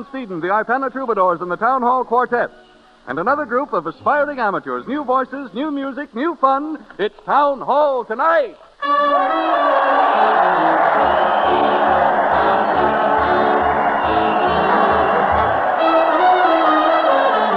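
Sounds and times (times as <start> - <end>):
speech: 0.0 - 10.8
brass band playing at a parade: 8.8 - 17.5
crowd cheering and whooping at a parade: 8.9 - 17.5.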